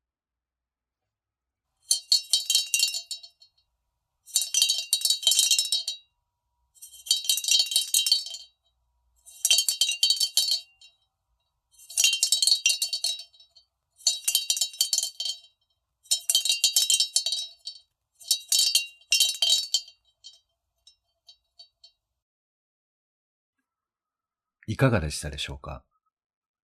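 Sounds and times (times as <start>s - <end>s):
unglazed rabbit-shaped clay bell being shaken: 1.9s - 3.5s, 4.3s - 6.0s, 6.8s - 8.6s, 9.2s - 11.0s, 11.7s - 21.7s
speech: 24.8s - 25.9s.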